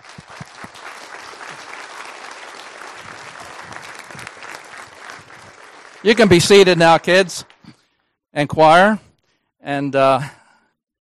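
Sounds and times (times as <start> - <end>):
crowd applauding: 0.0 - 7.6
speech: 6.0 - 7.5, 8.4 - 9.0, 9.6 - 10.4.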